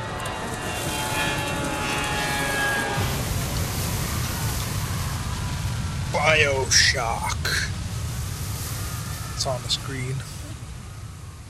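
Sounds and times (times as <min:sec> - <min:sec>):
airplane engine roar in flight: 0:00.0 - 0:11.4
faint high whine: 0:00.0 - 0:11.4
speech: 0:06.2 - 0:07.8, 0:09.4 - 0:10.3.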